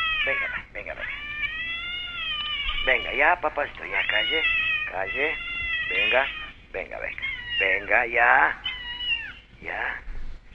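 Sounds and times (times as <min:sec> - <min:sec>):
cat meowing: 0:00.0 - 0:09.6
speech: 0:00.2 - 0:01.3, 0:02.8 - 0:08.6, 0:09.6 - 0:10.1.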